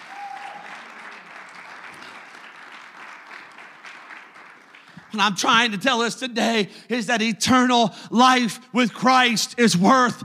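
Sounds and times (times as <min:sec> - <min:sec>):
congregation clapping hands in applause: 0:00.0 - 0:06.1
speech: 0:05.1 - 0:10.2.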